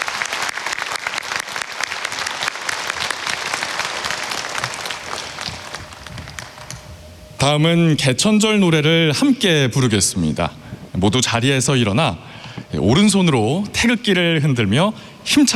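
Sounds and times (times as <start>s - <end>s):
large audience applause: 0.0s - 6.9s
speech: 7.4s - 15.5s.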